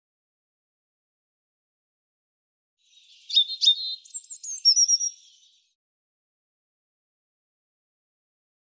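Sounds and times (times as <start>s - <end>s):
European robin singing: 2.8s - 5.8s.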